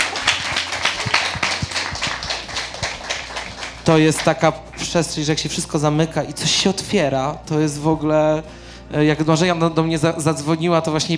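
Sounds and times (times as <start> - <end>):
laughter: 0.0 - 3.5
people clapping: 0.0 - 5.1
speech: 3.9 - 11.1.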